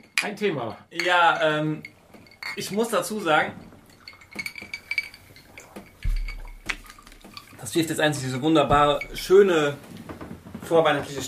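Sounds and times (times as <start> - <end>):
speech: 0.2 - 1.9, 2.6 - 3.7, 7.6 - 10.0, 10.7 - 11.2
glasses clinking in a toast: 0.7 - 9.8
soft knock: 6.0 - 7.3, 8.7 - 9.4.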